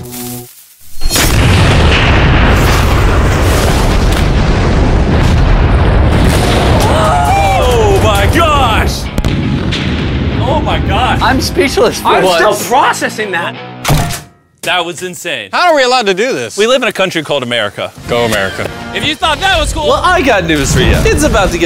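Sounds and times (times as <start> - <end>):
massive explosion of a large creeper: 1.0 - 11.6
speech: 11.5 - 13.7, 14.7 - 21.6.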